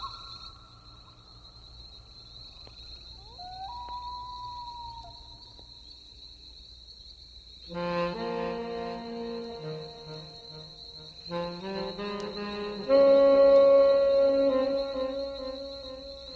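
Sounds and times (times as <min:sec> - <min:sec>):
saxophone solo: 0:07.7 - 0:16.3.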